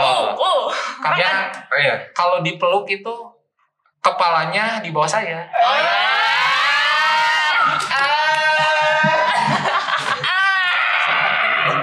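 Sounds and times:
speech: 0:01.0 - 0:03.4, 0:04.0 - 0:06.2
crowd of fans screaming and shrieking: 0:05.6 - 0:11.8
excited laughter: 0:07.5 - 0:11.8.

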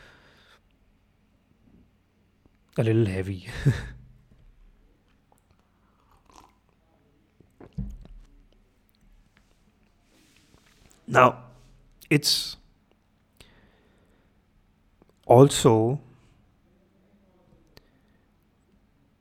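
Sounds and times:
speech: 0:02.8 - 0:04.0, 0:11.1 - 0:11.4, 0:12.1 - 0:12.6, 0:15.3 - 0:16.1
person taking a noisy sip of a drink: 0:05.4 - 0:06.8.

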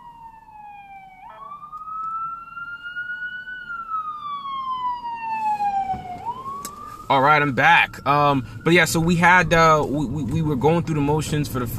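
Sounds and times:
ambulance siren wailing in a rising-then-falling sweep: 0:00.0 - 0:11.7
low traffic rumble: 0:00.0 - 0:11.7
speech: 0:07.1 - 0:11.7.

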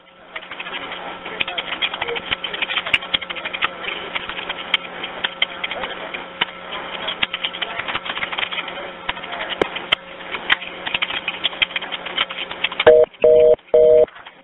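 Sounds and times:
telephone line crackle and hiss with clicks: 0:00.6 - 0:14.4
telephone busy tone pulses: 0:12.9 - 0:14.1.

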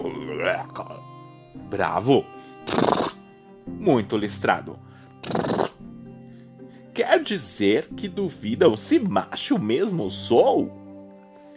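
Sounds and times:
speech: 0:00.4 - 0:01.0, 0:01.6 - 0:02.9, 0:03.8 - 0:05.6, 0:07.0 - 0:10.8
zebra neighing: 0:02.6 - 0:03.2, 0:05.2 - 0:05.8.

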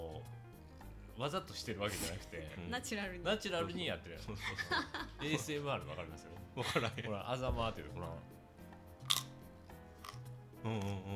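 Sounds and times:
speech: 0:01.2 - 0:08.4, 0:10.6 - 0:11.1
laughter: 0:04.3 - 0:07.2
crisp crunchy bites: 0:09.0 - 0:09.4, 0:10.0 - 0:11.0.

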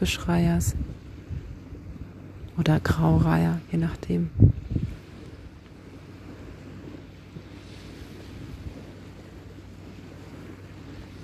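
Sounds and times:
speech: 0:00.0 - 0:00.9, 0:02.6 - 0:04.9
sea waves rushing: 0:00.0 - 0:11.2
wind buffeting the microphone: 0:00.0 - 0:11.2.

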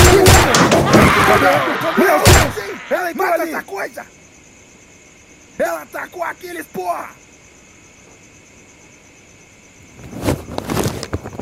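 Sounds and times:
gunshots: 0:00.0 - 0:02.9
speech: 0:05.6 - 0:07.2.

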